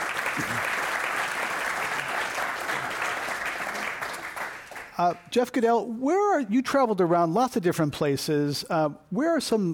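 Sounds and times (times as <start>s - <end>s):
large crowd applauding: 0.0s - 5.0s
speech: 0.4s - 0.8s, 5.0s - 9.7s.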